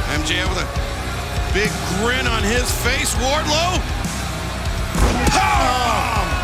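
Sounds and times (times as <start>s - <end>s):
speech: 0.2s - 4.1s
steady roar of crowd noise: 4.2s - 6.4s
wrestler powerbombed onto a steel chair: 5.0s - 5.7s.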